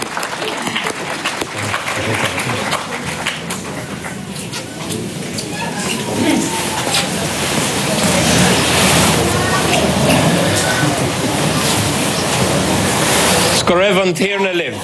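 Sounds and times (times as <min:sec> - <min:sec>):
laughter: 0:00.0 - 0:13.8
church audience applauding a visiting choir at a Eucharist: 0:00.0 - 0:14.8.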